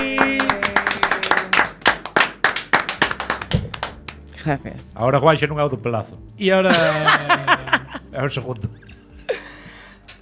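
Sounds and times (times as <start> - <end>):
audience applauding: 0.0 - 4.2
speech: 4.4 - 8.8
laughter: 6.7 - 8.2.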